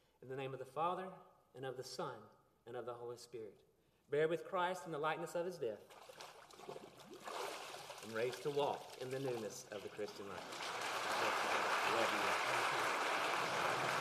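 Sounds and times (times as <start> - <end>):
speech: 0.2 - 6.8, 8.0 - 13.9
water sloshing and splashing in a baptismal pool during a baptism: 5.8 - 10.5.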